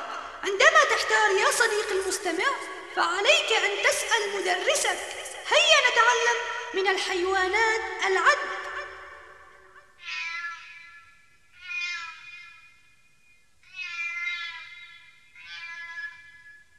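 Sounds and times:
speech: 0.5 - 8.5
cat meowing: 10.0 - 10.9, 11.6 - 12.5, 13.7 - 16.4.

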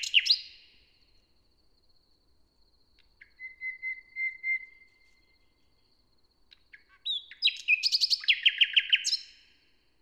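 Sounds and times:
Common nightingale singing in a forest near Hoscheid Luxembourg: 0.0 - 0.8, 3.0 - 5.8, 6.5 - 9.6.

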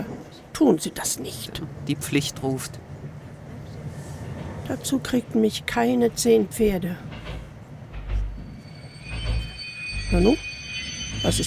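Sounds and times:
low train rumble while braking: 0.0 - 11.4
speech: 0.6 - 2.9, 4.7 - 7.1, 10.1 - 10.5, 11.2 - 11.4
train wheels squealing while braking to a stop: 8.0 - 11.4.

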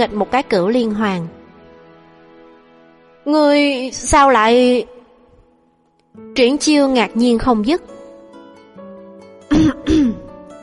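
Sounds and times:
speech: 0.0 - 1.4, 3.2 - 5.0, 6.4 - 7.9
man coughing lightly: 9.5 - 10.3.

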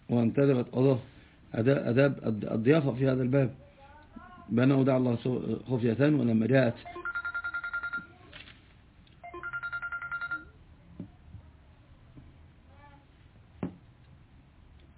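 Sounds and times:
speech: 0.1 - 3.6, 4.5 - 7.0
telephone ringing: 6.9 - 8.2, 9.2 - 10.6
soft knocks: 13.6 - 13.8.

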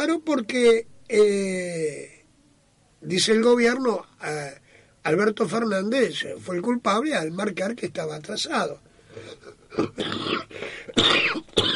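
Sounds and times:
speech: 0.0 - 2.2, 3.0 - 11.7
man with a cold coughing: 9.2 - 11.7.

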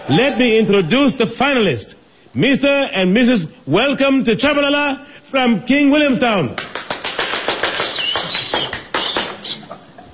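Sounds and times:
speech: 0.1 - 6.7
audience applauding at a ballroom dancing championship final: 6.5 - 9.6.

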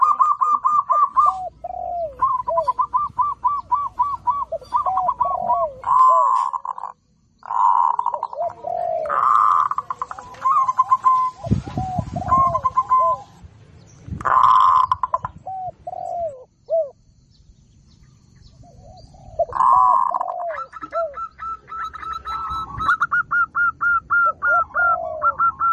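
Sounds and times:
zebra dove singing rolling trilled coos: 0.0 - 13.4, 14.2 - 17.0, 18.6 - 25.7.

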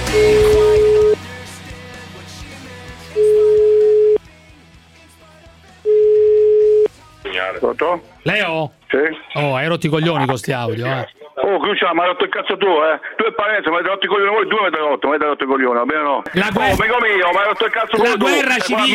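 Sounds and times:
telephone ringing tones while a call is placed: 0.1 - 1.2, 3.2 - 4.2, 5.9 - 6.9
speech: 7.8 - 18.9.

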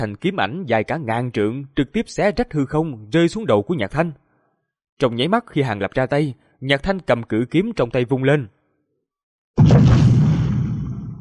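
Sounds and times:
speech: 0.0 - 4.2, 5.0 - 8.6
huge explosion sound effect: 9.6 - 11.1.

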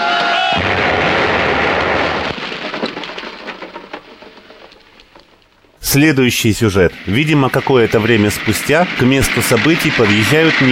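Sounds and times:
crackling rumbling debris: 0.3 - 10.6
grenade explosion in a war film: 0.5 - 4.8, 6.6 - 10.6
speech: 5.9 - 10.6.

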